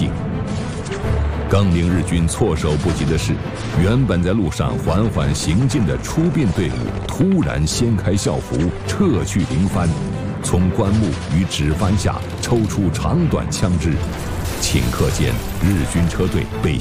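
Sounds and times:
booming artillery in a village ambush: 0:00.1 - 0:16.7
rapid bursts of gunfire in a village ambush: 0:02.6 - 0:07.5, 0:08.4 - 0:16.4.

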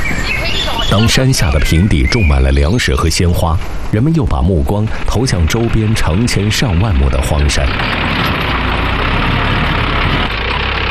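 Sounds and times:
self-modified mountain tractor engine rumbling while tilling land in the Yongxi countryside: 0:00.0 - 0:10.8
speech: 0:00.9 - 0:08.2.

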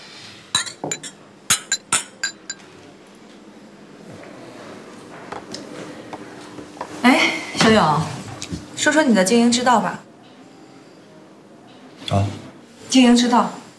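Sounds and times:
glasses clinking in a toast: 0:00.6 - 0:02.6
speech: 0:07.1 - 0:08.2, 0:08.8 - 0:10.1, 0:12.9 - 0:13.6.

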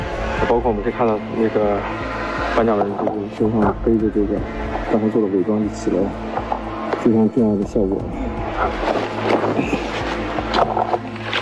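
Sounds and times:
drone motor humming overhead: 0:00.0 - 0:11.3
speech: 0:00.5 - 0:09.8
rustling: 0:08.4 - 0:11.3.

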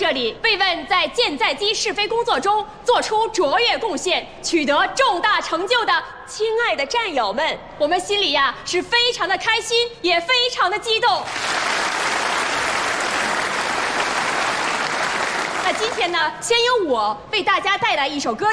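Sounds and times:
speech: 0:00.1 - 0:11.7, 0:15.7 - 0:18.5
large audience applauding at the start of a performance: 0:11.2 - 0:16.3.

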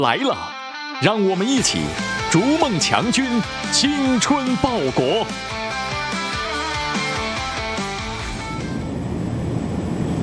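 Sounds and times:
speech: 0:00.0 - 0:05.6
music with stepped melodic notes: 0:00.4 - 0:08.8
military helicopters flying on a border patrol in Xinjiang China: 0:02.1 - 0:10.2.

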